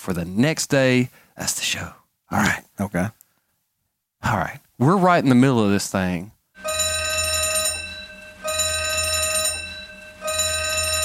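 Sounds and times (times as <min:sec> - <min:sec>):
speech: 0:00.0 - 0:03.2, 0:04.2 - 0:06.4
fire alarm ringing: 0:06.6 - 0:11.0.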